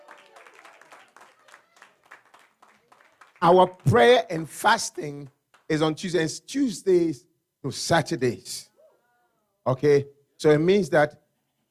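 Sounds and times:
crowd clapping: 0.0s - 4.4s, 5.2s - 5.8s
speech: 3.4s - 8.7s, 9.6s - 11.2s.

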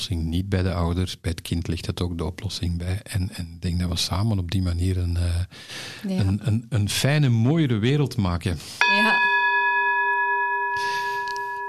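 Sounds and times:
speech: 0.0s - 9.3s
gong struck to signal the end of a conversation: 8.8s - 11.6s.

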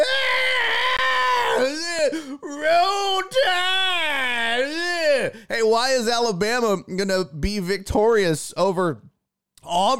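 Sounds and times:
person screaming at top of lungs: 0.0s - 5.4s
speech: 5.5s - 9.9s.

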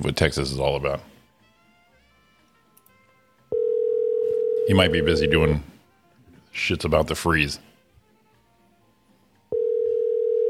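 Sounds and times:
speech: 0.0s - 1.2s, 4.7s - 5.7s, 6.5s - 7.7s
telephone ringing tone on an outgoing call to a barbershop: 3.5s - 5.5s, 9.5s - 10.4s.

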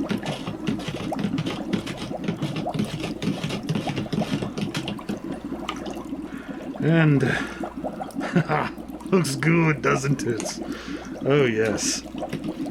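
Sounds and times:
spoon stirring cream in a container: 0.0s - 5.3s
speech: 6.8s - 7.6s, 8.4s - 12.1s.

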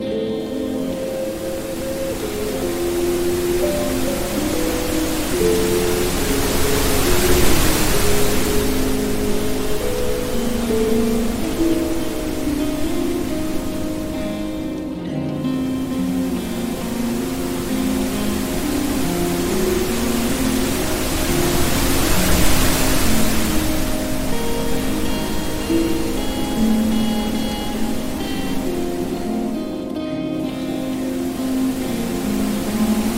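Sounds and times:
relaxing piano music: 0.0s - 33.1s
soft water stream: 0.0s - 33.1s.

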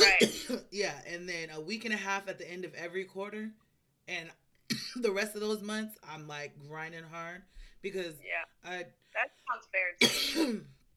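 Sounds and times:
person clearing throat: 0.0s - 0.6s, 9.9s - 10.7s
person coughing: 0.0s - 0.6s, 9.8s - 10.6s
speech: 0.0s - 10.8s.

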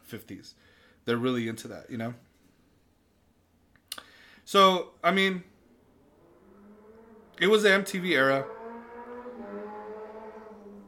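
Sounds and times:
speech: 0.1s - 2.3s, 4.5s - 5.5s, 7.4s - 8.6s
car passing by outside: 5.7s - 10.8s.

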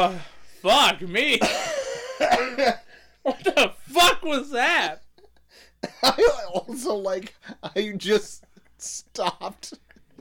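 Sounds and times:
speech: 0.0s - 5.0s, 5.8s - 9.8s
person coughing: 1.4s - 3.6s.

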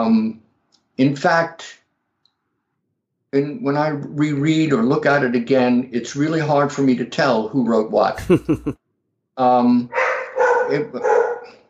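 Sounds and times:
speech: 0.0s - 0.4s, 1.0s - 1.8s, 3.3s - 8.8s, 9.4s - 10.0s, 10.7s - 11.1s
laughter: 8.2s - 8.8s
dog barking: 9.9s - 11.6s.

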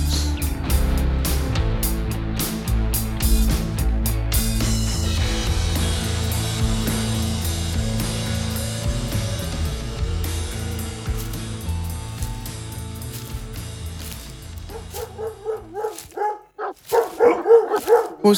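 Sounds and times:
low droning music: 0.0s - 16.3s
dogs barking excitedly: 14.0s - 18.3s
dogs with high whimpering yelps: 14.7s - 18.3s.

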